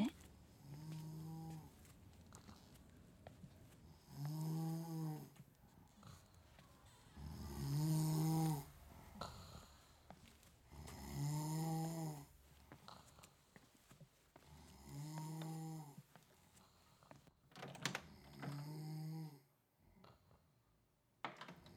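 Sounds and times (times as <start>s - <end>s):
woman snoring loudly while asleep: 0.0s - 1.7s, 3.9s - 5.4s, 6.0s - 10.1s, 10.7s - 13.3s, 14.5s - 16.1s, 18.5s - 19.5s.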